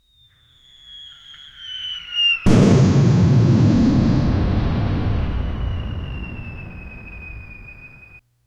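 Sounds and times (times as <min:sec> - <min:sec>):
Nebelwerfer rocket launch: 0:02.5 - 0:08.2
explosion: 0:02.5 - 0:08.2.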